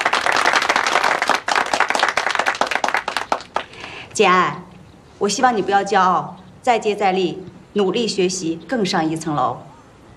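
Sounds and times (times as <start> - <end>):
roomful of people clapping in a classroom: 0.0 - 4.0
speech: 4.2 - 4.6, 5.2 - 9.7.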